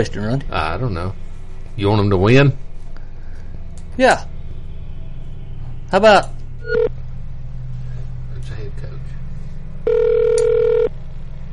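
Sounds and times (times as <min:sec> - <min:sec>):
speech: 0:00.0 - 0:02.7, 0:04.0 - 0:04.3, 0:05.9 - 0:06.4
constant low hum: 0:00.0 - 0:11.5
telephone ring tone: 0:06.6 - 0:06.9, 0:09.8 - 0:10.9
telephone dialing tones from a call to an unknown local number: 0:09.9 - 0:10.9.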